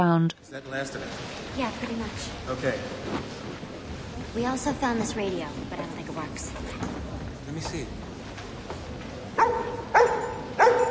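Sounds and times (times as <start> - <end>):
speech: 0.0 - 3.7, 4.4 - 8.1
tramp's dog barking: 9.4 - 10.8.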